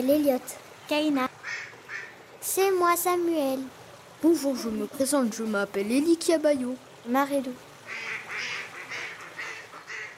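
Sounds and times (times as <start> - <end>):
speech: 0.0 - 1.7, 2.4 - 8.2
ducks quacking at a pond: 1.4 - 2.2, 7.8 - 10.1.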